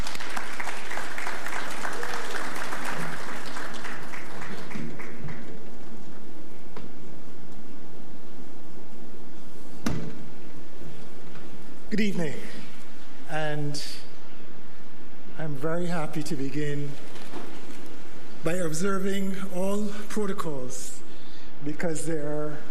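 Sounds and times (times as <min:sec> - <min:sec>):
audience applause at an awards ceremony: 0:00.0 - 0:06.1
speech: 0:12.0 - 0:12.6, 0:13.3 - 0:14.0, 0:15.5 - 0:17.0, 0:18.4 - 0:21.0, 0:21.6 - 0:22.6.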